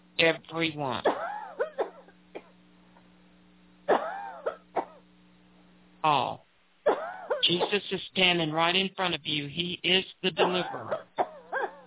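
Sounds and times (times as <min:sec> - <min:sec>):
steady low electrical hum: 0:00.0 - 0:11.8
speech: 0:00.2 - 0:01.2, 0:06.0 - 0:06.4, 0:07.5 - 0:11.1
people coughing and clearing throats during a deliverance prayer: 0:01.0 - 0:02.6, 0:03.9 - 0:05.0, 0:06.8 - 0:07.9, 0:10.4 - 0:11.8.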